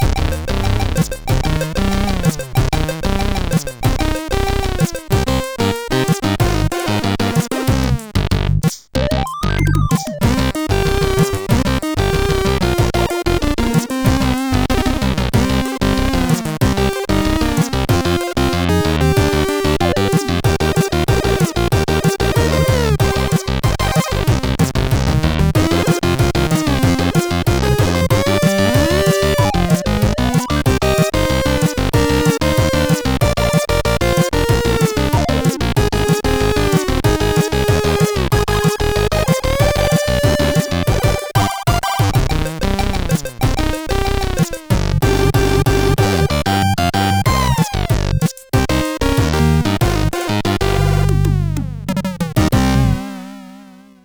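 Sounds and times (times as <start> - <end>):
MOS 8580 SID chip music from games: 0.0 - 8.1, 9.0 - 54.0.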